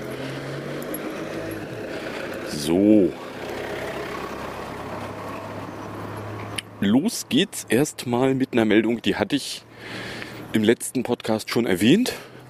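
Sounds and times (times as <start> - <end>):
car engine humming: 0.0 - 7.9
speech: 2.5 - 3.2, 6.8 - 12.3.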